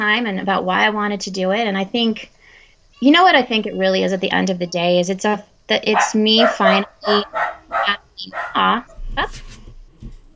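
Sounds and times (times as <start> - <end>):
speech: 0.1 - 2.4, 3.0 - 9.6
dog barking: 5.3 - 8.8
indistinct voices: 5.7 - 8.9.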